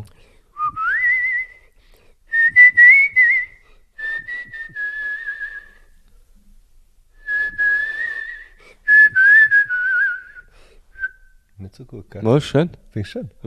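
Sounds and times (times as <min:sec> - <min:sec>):
person whistling a simple tune: 0:00.6 - 0:01.7, 0:02.3 - 0:05.9, 0:07.2 - 0:11.4
speech: 0:11.9 - 0:13.4.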